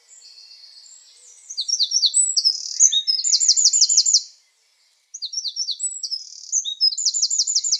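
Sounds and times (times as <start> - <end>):
Eurasian Wren song: 0.0 - 7.7.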